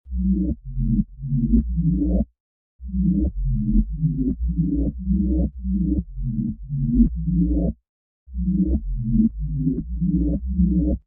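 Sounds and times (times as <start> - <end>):
bass with chorus effect: 0.1 - 7.7, 8.3 - 11.0.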